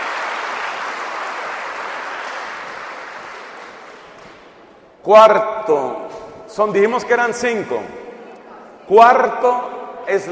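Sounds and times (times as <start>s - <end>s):
audience applauding: 0.0s - 4.4s
speech: 5.0s - 8.0s, 8.9s - 10.3s.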